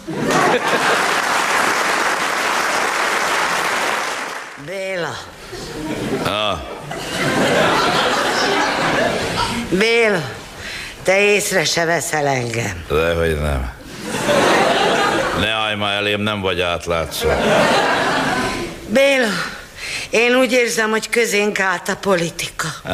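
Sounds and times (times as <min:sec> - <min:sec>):
laughter: 0:00.0 - 0:01.3, 0:05.6 - 0:09.6, 0:14.0 - 0:15.4, 0:17.2 - 0:18.7
speech: 0:00.1 - 0:01.1, 0:04.7 - 0:07.2, 0:09.7 - 0:10.4, 0:11.1 - 0:14.6, 0:15.4 - 0:18.0, 0:18.9 - 0:22.9
crowd applauding after a scene: 0:00.2 - 0:04.6.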